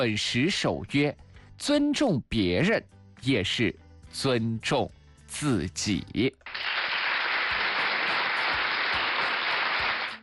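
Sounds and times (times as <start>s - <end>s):
speech: 0.0s - 6.7s
applause from a group: 6.5s - 10.2s.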